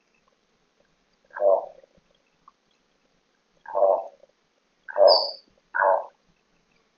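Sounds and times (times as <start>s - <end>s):
Gould's toucanet hoarse throaty croaks: 1.3s - 1.9s, 3.6s - 4.2s, 4.9s - 6.2s.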